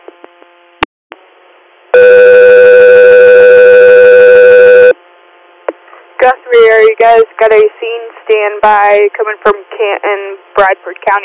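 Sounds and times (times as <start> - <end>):
dispatch alert tone over a radio channel: 2.0 - 5.0
speech: 7.0 - 11.2.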